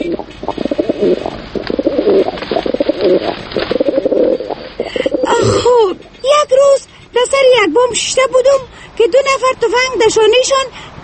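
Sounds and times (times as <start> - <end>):
pigeon cooing: 0.0 - 6.2
faint hiss: 0.0 - 11.0
speech: 1.0 - 1.4, 3.0 - 3.7, 7.6 - 11.0.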